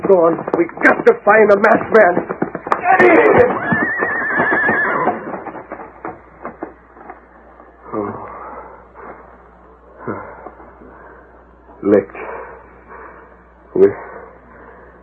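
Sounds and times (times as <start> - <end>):
speech: 0.1 - 2.3, 2.9 - 3.6, 11.8 - 12.2
horse whinnying: 2.7 - 5.6.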